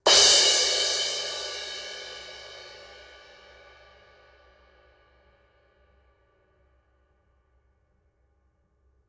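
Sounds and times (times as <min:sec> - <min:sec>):
reversed 19-inch medium thin crash cymbal: 0:00.1 - 0:03.9.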